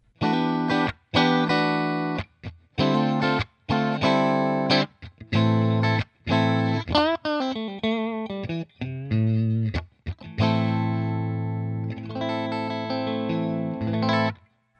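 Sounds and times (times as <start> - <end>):
solo electric guitar on bridge and middle pickups: 0.1 - 14.5.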